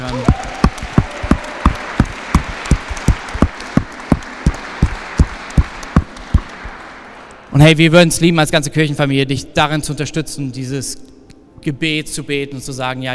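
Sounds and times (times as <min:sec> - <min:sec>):
audience applause in a church: 0:00.0 - 0:07.7
soft crowd noise in a reverberant room: 0:00.0 - 0:07.8
speech: 0:07.6 - 0:13.1.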